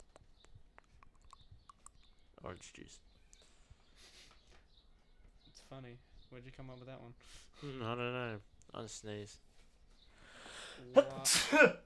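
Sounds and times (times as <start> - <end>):
speech: 2.4 - 3.1, 5.7 - 9.5, 10.8 - 11.8
person sneezing: 11.0 - 11.8.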